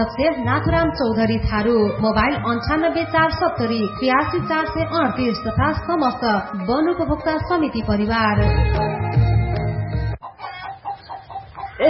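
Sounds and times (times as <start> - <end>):
speech: 0.0 - 9.3
chickens clucking on a chicken farm: 10.2 - 11.8.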